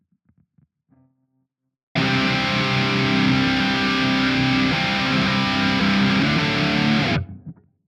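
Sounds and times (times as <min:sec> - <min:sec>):
guitar: 0:02.0 - 0:07.8.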